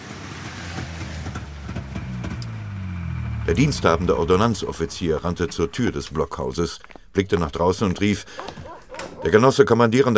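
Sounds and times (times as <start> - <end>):
car engine humming as it pulls up in front of a command post: 0.0 - 9.4
speech: 3.5 - 8.6, 9.2 - 10.1
soft knocks: 7.8 - 9.3.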